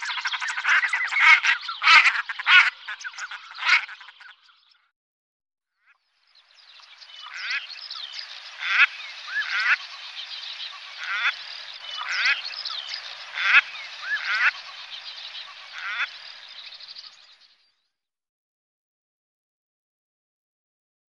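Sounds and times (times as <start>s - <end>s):
common shelduck cackling with dense rattling nasal notes: 0.3s - 4.2s, 8.6s - 10.0s, 10.7s - 12.5s, 13.3s - 14.8s, 15.5s - 16.2s.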